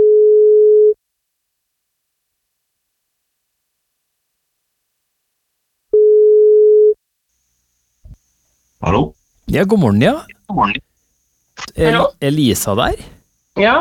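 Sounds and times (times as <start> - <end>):
telephone ringback tone on the line: 0.0 - 1.0, 6.0 - 7.0
speech: 9.6 - 10.9, 11.6 - 13.7.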